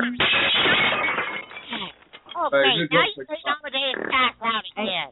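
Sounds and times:
glass table shattering as someone falls onto it: 0.2s - 2.3s
speech: 2.5s - 5.0s.

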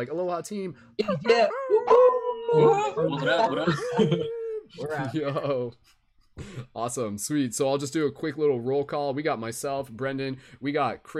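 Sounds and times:
speech: 0.0s - 11.1s
people imitating wolf howls: 1.3s - 4.6s
people whooping: 1.8s - 4.5s
laughter: 2.5s - 5.8s.

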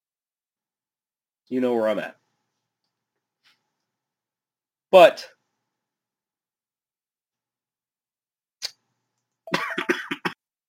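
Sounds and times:
speech: 1.5s - 2.2s, 4.9s - 5.4s
coughing fit: 9.5s - 10.4s.

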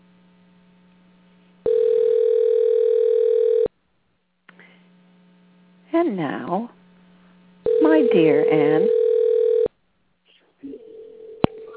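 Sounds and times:
telephone dialing tone: 1.7s - 3.7s, 7.7s - 9.7s
speech: 6.1s - 6.8s, 8.1s - 9.0s
quiet talk-like sound: 10.2s - 11.7s.

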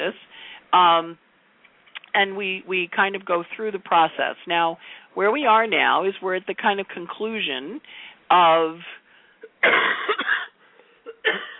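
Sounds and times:
speech: 0.1s - 1.3s, 2.1s - 9.0s, 9.6s - 10.2s
person coughing raspily with a lingering cough after an airplane trip: 9.5s - 11.5s.

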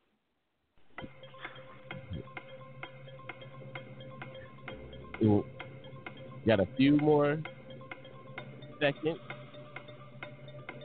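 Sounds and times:
low sustained musical bed: 0.9s - 10.8s
countdown clock ticking: 1.0s - 10.8s
speech: 5.2s - 5.6s, 6.5s - 7.6s, 8.8s - 9.3s.

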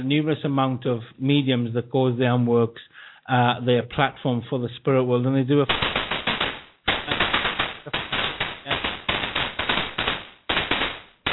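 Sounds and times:
speech: 0.0s - 5.9s
fireworks going off in crackling volleys of sharp bangs: 5.7s - 11.3s.

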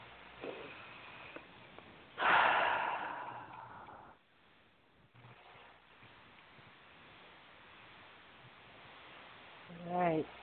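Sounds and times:
slow deep breath drawn in: 2.2s - 4.2s.

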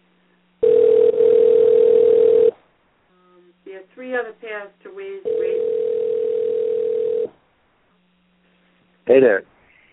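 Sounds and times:
faint hiss of telephone line noise: 0.0s - 9.9s
telephone dial tone while placing a call: 0.6s - 2.5s, 5.3s - 7.3s
speech: 9.1s - 9.5s.

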